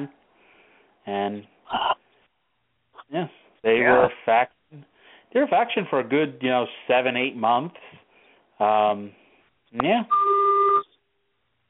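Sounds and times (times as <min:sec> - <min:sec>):
speech: 0:00.0 - 0:00.2, 0:01.0 - 0:01.9, 0:03.1 - 0:08.0, 0:08.6 - 0:10.4
malfunctioning phone beeping with a buzzy two-tone note: 0:10.1 - 0:11.0.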